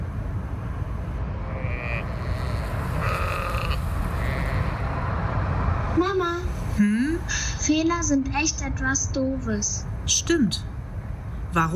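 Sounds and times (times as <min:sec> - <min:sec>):
moving car rumble with the window open: 0:00.0 - 0:10.1
sheep bleating in the countryside: 0:01.5 - 0:05.0
speech: 0:06.1 - 0:10.7, 0:11.5 - 0:11.7.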